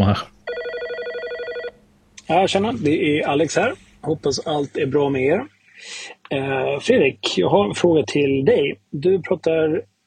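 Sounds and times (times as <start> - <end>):
speech: 0.1 - 0.4, 2.3 - 9.9
telephone ringing for an incoming call with a trilling electronic bell: 0.4 - 1.8.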